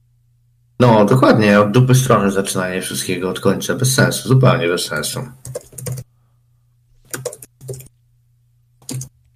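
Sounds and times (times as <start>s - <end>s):
faint steady low hum: 0.0s - 9.3s
speech: 0.8s - 5.7s
typing on a computer keyboard: 5.4s - 6.0s, 7.1s - 7.9s, 8.8s - 9.1s.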